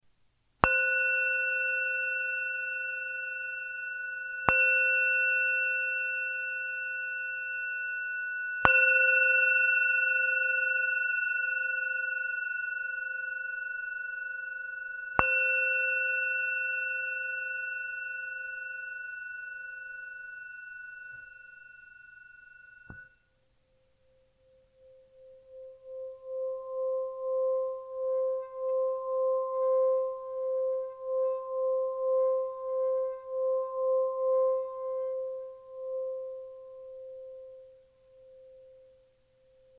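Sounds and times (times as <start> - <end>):
355 g singing bowl: 0.6 - 39.7.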